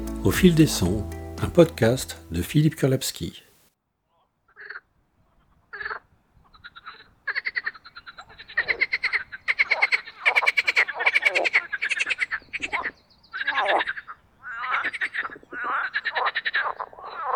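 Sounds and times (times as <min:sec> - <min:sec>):
speech: 0:00.2 - 0:03.4
marsh frogs mating chorus in an artificial boating pond in spring: 0:04.5 - 0:17.3.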